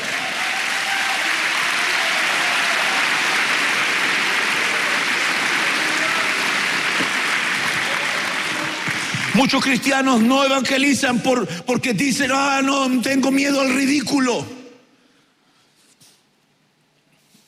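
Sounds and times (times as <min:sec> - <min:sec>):
audience clapping hands for the Lord: 0:00.0 - 0:10.8
speech: 0:09.4 - 0:14.6.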